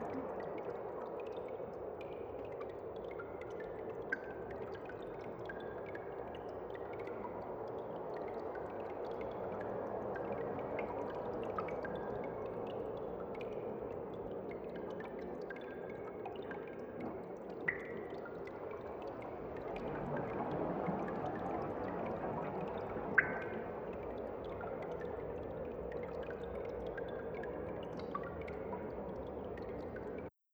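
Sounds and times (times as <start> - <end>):
cave ambience: 0.0 - 30.3.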